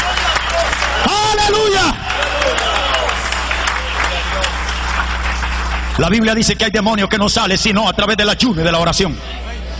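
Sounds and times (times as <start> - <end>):
audience applauding: 0.0 - 6.6
speech: 6.0 - 9.4.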